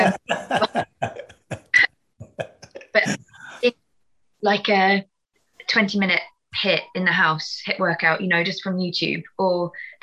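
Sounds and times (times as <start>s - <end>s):
person coughing upstairs: 0.0s - 1.6s
laughter: 0.0s - 3.6s
speech: 4.5s - 5.1s, 5.7s - 10.0s.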